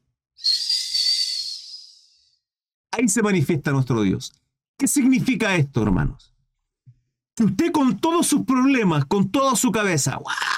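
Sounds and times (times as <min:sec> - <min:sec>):
soft airy high whistle: 0:00.4 - 0:02.4
speech: 0:03.0 - 0:06.3, 0:07.4 - 0:10.5.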